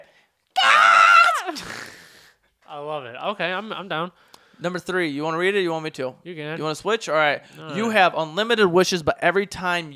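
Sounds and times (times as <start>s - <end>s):
high-pitched comedic scream: 0.6s - 2.2s
speech: 2.8s - 9.9s.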